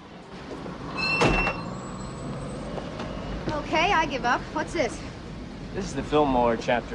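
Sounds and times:
steady low outdoor noise on a wide quiet street: 0:00.0 - 0:06.9
car door opening and shutting as people get out of a parked car: 0:00.6 - 0:01.7
speech: 0:03.6 - 0:05.2, 0:05.8 - 0:06.9.

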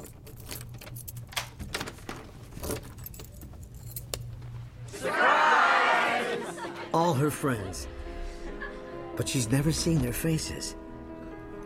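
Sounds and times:
keys jangling and clinking while unlocking a door: 0:00.0 - 0:04.4
laughter: 0:05.0 - 0:09.1
speech: 0:07.1 - 0:08.0, 0:09.2 - 0:10.8.

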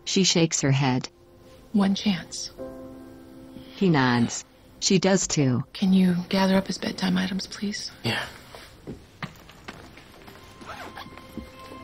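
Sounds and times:
speech: 0:00.1 - 0:02.6, 0:03.8 - 0:09.0
fabric rustling: 0:08.4 - 0:11.8
suitcase zipper pulled shut: 0:10.6 - 0:11.1.

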